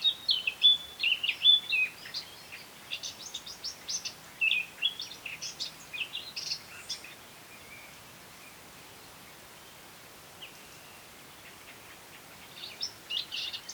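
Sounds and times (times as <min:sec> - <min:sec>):
Eurasian blackcap Sylvia atricapilla singing: 0:00.0 - 0:07.9, 0:12.4 - 0:13.7.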